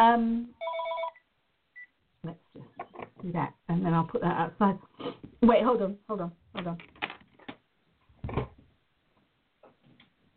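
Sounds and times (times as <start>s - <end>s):
speech: 0.0s - 0.6s, 2.2s - 7.0s
electronic phone ringtone with buzzing tone and warbling trill: 0.6s - 1.2s.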